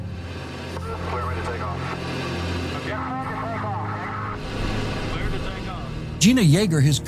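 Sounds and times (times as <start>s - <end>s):
aircraft engines starting and running: 0.0s - 7.0s
speech: 6.2s - 7.0s.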